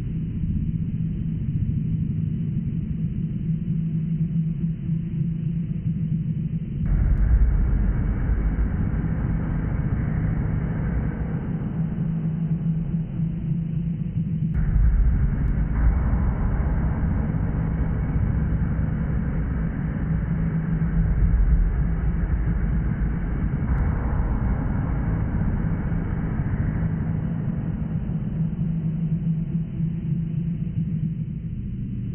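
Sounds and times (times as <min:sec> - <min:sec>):
hallway hum: 0:00.0 - 0:32.1.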